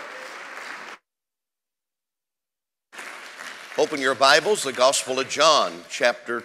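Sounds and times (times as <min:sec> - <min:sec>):
audience applause welcoming a preacher at a church service: 0:00.0 - 0:01.0, 0:03.0 - 0:05.4
speech: 0:03.8 - 0:06.4.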